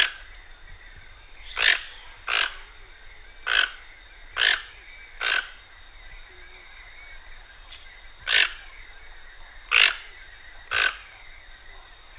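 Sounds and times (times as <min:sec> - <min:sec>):
toucan uttering gruff grating croaks in the Pantanal: 0:01.4 - 0:02.8, 0:03.4 - 0:05.6, 0:08.2 - 0:08.9, 0:09.7 - 0:11.2.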